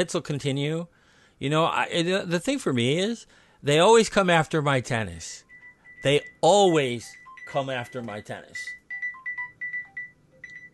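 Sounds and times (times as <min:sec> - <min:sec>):
speech: 0:00.0 - 0:05.4, 0:06.0 - 0:08.8
phone ringtone electronic melody of short bright beeps: 0:05.4 - 0:10.7.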